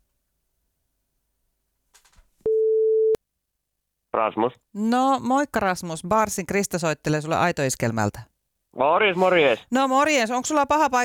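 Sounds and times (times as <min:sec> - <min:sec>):
telephone ringing tone electronic beep: 0:02.5 - 0:03.2
speech: 0:04.2 - 0:11.0.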